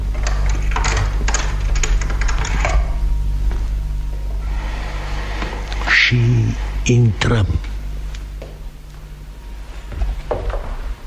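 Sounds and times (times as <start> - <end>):
secret door opening with rattling mechanical clicks and clatters: 0.0 - 3.0
steady low hum: 0.0 - 11.0
speech: 6.9 - 7.7.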